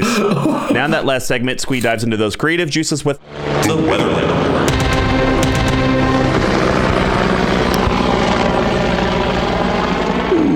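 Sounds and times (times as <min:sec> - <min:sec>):
laughter: 0:00.0 - 0:01.1
speech: 0:00.2 - 0:04.5
helicopter rotor blades thumping: 0:03.2 - 0:10.5.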